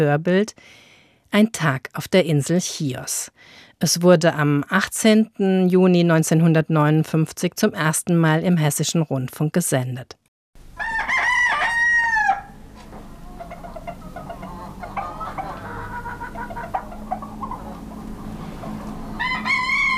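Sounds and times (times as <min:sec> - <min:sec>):
speech: 0:00.0 - 0:10.2
roosters crowing at dawn on the island of Chios: 0:10.7 - 0:19.9.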